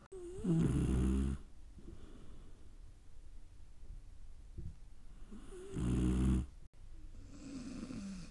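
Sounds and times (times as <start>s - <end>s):
beagle snoring while napping: 0.1s - 1.5s, 5.3s - 6.6s, 7.2s - 8.2s
quiet breathing: 1.4s - 3.1s, 5.0s - 8.2s.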